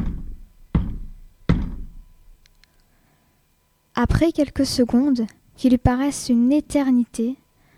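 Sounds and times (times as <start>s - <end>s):
slow hesitant knocking on a wooden door: 0.0s - 2.1s
speech: 4.0s - 7.4s.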